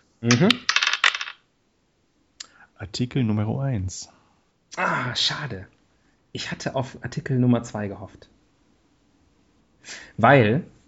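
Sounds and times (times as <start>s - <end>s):
speech: 0.2s - 0.7s, 2.8s - 4.2s, 4.8s - 8.4s, 9.8s - 10.8s
dice rolled across a hard surface: 0.3s - 1.4s.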